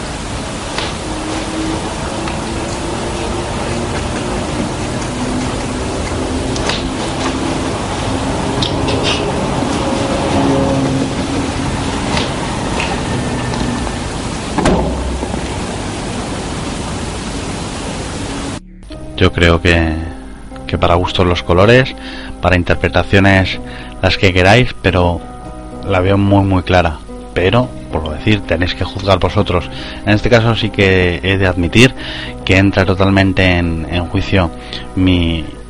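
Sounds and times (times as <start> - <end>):
hissy static-filled broadband noise: 0.0 - 19.2
speech: 19.4 - 20.1, 20.7 - 35.6.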